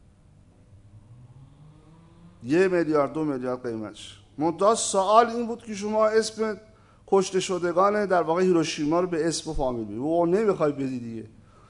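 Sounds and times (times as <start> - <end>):
car engine rumbling and revving gently: 0.7 - 2.8
speech: 2.4 - 11.4.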